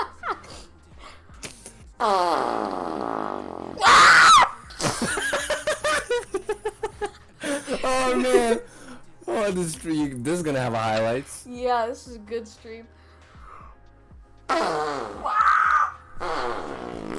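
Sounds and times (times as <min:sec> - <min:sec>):
long buzzing fart-like noise: 0:01.4 - 0:04.0, 0:14.5 - 0:17.1
speech: 0:02.0 - 0:03.2, 0:09.5 - 0:13.0
person screaming shrilly: 0:03.8 - 0:04.7, 0:15.2 - 0:16.6
rapid choppy bursts of laughter: 0:04.6 - 0:08.8.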